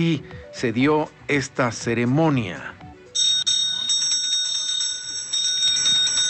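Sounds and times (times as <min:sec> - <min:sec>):
speech: 0:00.0 - 0:02.8
ceremonial bells ringing in the Mexican Senate: 0:03.2 - 0:06.2.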